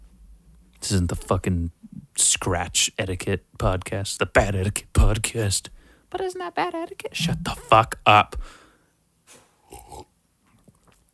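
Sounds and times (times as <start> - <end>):
speech: 0.9 - 8.6
dog snorting: 7.2 - 7.7.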